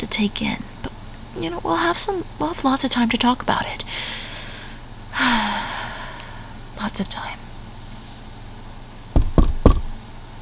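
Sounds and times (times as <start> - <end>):
speech: 0.0 - 0.7, 1.4 - 4.3, 6.9 - 7.4
firm knocks on a door: 9.1 - 9.9.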